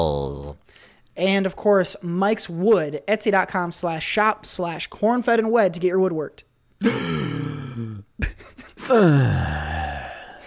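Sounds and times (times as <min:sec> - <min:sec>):
speech: 0:00.0 - 0:09.6
person imitating an inhaling orgasm moan: 0:06.8 - 0:08.1, 0:08.8 - 0:10.4.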